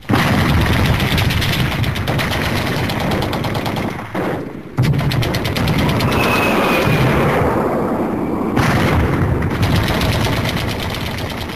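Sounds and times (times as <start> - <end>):
artillery rumble with deep booming blasts: 0.0 - 11.5
rapid machine-gun bursts: 0.1 - 4.2, 4.8 - 6.2, 9.5 - 11.5.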